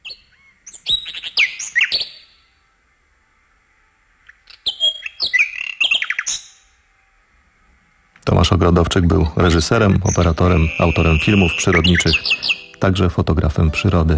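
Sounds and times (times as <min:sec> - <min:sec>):
recorded wild bird song: 0:00.0 - 0:07.2, 0:09.3 - 0:14.1
speech: 0:08.2 - 0:14.1.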